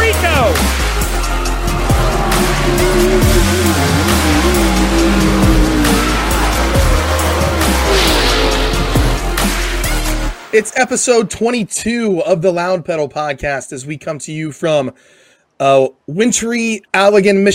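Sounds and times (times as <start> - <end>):
high-revving race car engines roaring in a drag race: 0.6 - 9.8
speech: 10.6 - 17.5.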